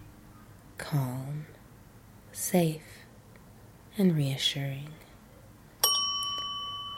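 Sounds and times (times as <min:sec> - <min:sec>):
speech: 0:00.9 - 0:01.3, 0:02.4 - 0:02.9, 0:04.0 - 0:05.0
single bright bell ringing: 0:05.8 - 0:06.9.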